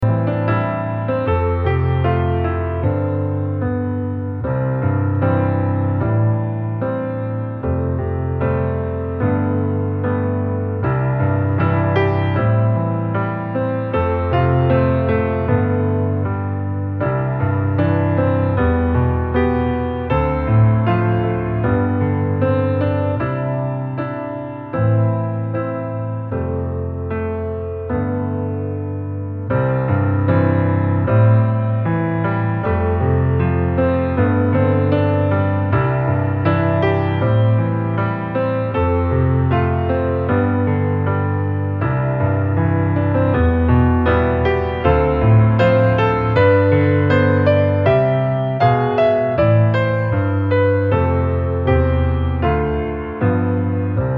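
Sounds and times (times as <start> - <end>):
solo piano: 0.0 - 54.1.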